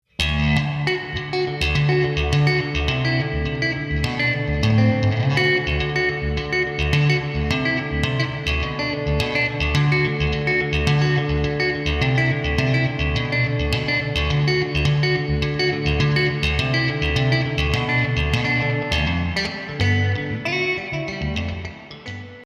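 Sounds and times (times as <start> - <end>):
Telecaster electric guitar with slapback echo: 0.0 - 22.4.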